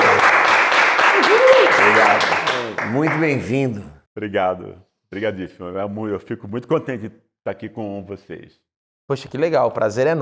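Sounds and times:
crowd applauding: 0.0s - 3.5s
speech: 2.9s - 10.2s.

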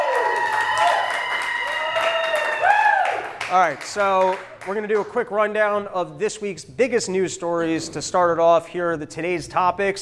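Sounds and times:
large live audience cheering and shouting: 0.0s - 3.4s
large live audience clapping: 0.0s - 5.2s
speech: 3.5s - 10.0s.

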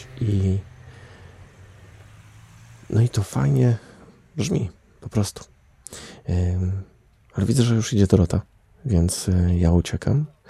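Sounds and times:
car engine rumble idling or rolling slowly at small intersection: 0.0s - 5.0s
broad road noise: 0.0s - 9.8s
speech: 0.2s - 0.7s, 3.0s - 10.4s.

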